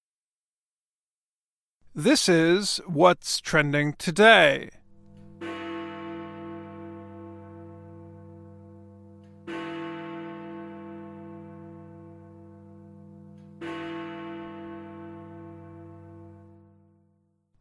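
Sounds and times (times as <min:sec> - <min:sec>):
speech: 0:02.0 - 0:04.8
large hour bell tolling in a clock tower in London: 0:04.8 - 0:16.9.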